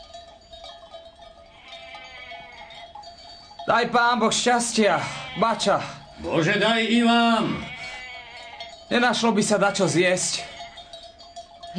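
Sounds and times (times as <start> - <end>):
sheep bleating in a mountain pasture: 1.6 - 2.8, 4.7 - 8.8, 9.4 - 10.9
speech: 3.7 - 7.7, 8.9 - 10.6.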